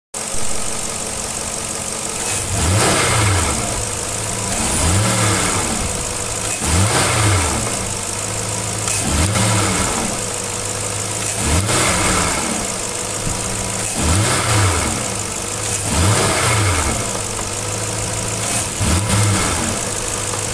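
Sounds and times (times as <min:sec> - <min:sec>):
XK8 4.0 car engine bogging down: 0:00.3 - 0:20.5.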